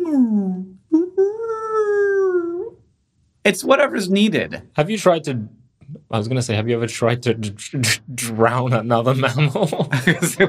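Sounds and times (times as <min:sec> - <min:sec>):
person vocally mimicking a high-pitched whale call: 0:00.0 - 0:02.8
speech: 0:03.4 - 0:10.4
laughter: 0:09.1 - 0:10.4.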